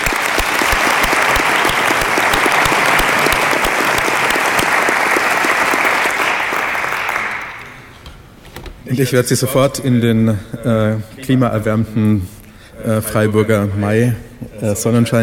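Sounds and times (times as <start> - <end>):
large audience applauding: 0.0 - 7.9
speech: 8.9 - 15.2.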